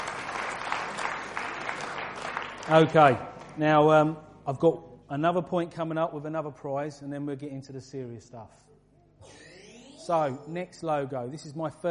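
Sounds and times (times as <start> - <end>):
audience applause at a quiz: 0.0 - 2.9
speech: 2.7 - 8.7, 10.1 - 11.8.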